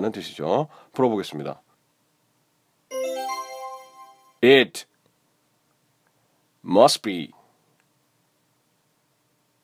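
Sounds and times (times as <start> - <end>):
speech: 0.0 - 1.6, 4.4 - 4.9, 6.6 - 7.4
cell phone ringtone playing a bright electronic melody: 2.9 - 4.4.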